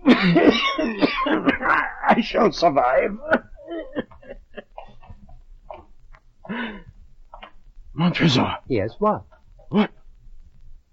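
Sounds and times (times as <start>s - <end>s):
man coughing in a rough hacking fit: 0.0s - 2.3s, 3.2s - 5.2s, 9.7s - 10.0s
speech: 0.2s - 0.5s, 2.2s - 3.4s, 8.1s - 10.0s.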